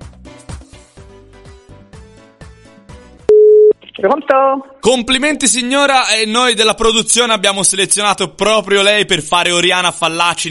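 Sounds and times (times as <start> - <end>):
telephone line tones while a number is dialed: 3.3 - 3.7
speech: 4.0 - 10.4.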